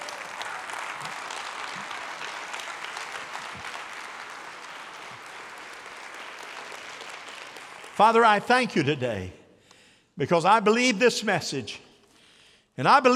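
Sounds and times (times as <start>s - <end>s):
audience applauding: 0.0s - 8.9s
speech: 8.0s - 9.4s, 10.2s - 11.8s, 12.8s - 13.1s.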